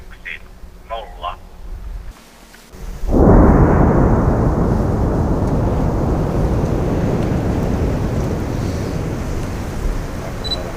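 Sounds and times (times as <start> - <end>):
mass detonation of 25 tonnes of explosives: 2.7 - 10.7.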